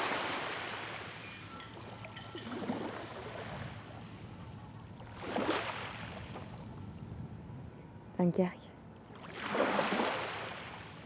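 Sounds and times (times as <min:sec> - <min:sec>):
waves breaking against a jetty in a small port at Malo, Dunkirk, France: 0:00.0 - 0:04.2, 0:05.0 - 0:06.6, 0:09.0 - 0:11.0
speech: 0:08.2 - 0:08.6.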